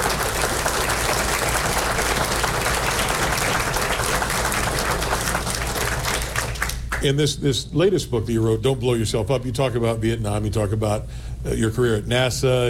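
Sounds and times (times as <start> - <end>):
large audience applause: 0.0 - 7.0
speech: 7.0 - 12.6.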